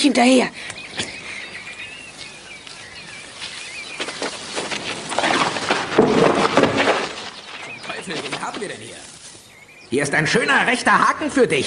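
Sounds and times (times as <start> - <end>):
speech: 0.0 - 1.1, 8.5 - 9.1, 9.9 - 11.6
birds chirping and twittering: 0.0 - 11.6
crackling rustling noises: 1.6 - 9.6.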